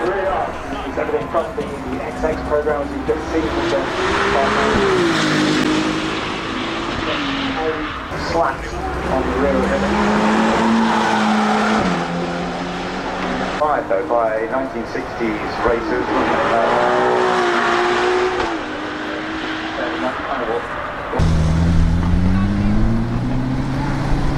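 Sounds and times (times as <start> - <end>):
Ferrari race car engines roaring and revving: 0.0 - 24.3
speech: 1.0 - 5.3, 7.1 - 10.5, 13.6 - 17.4, 20.0 - 21.3.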